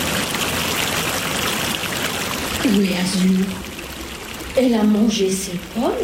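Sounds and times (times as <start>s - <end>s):
water flowing at a spring: 0.0s - 6.0s
speech: 2.6s - 3.7s, 4.6s - 6.0s.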